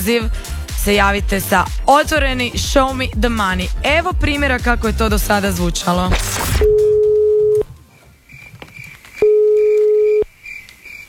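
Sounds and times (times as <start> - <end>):
speech: 0.0 - 6.8
telephone ringback tone: 6.6 - 7.7, 9.2 - 10.2
faint noise: 7.0 - 11.0.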